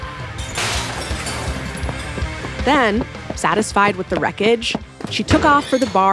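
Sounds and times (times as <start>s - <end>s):
mirrors, glasses and bottles shattering when hit by thrown stones: 0.4s - 2.5s
glass shards tinkling: 0.4s - 3.3s
scattered clinks and thuds: 0.4s - 5.6s
speech: 2.6s - 6.1s.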